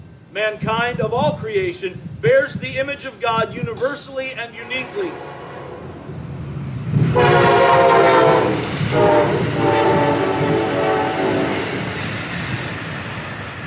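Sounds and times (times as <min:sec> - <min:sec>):
speech: 0:00.4 - 0:05.4
train horn blasts: 0:04.5 - 0:06.4, 0:07.0 - 0:12.0
train wheels rumbling on the track: 0:04.5 - 0:13.6.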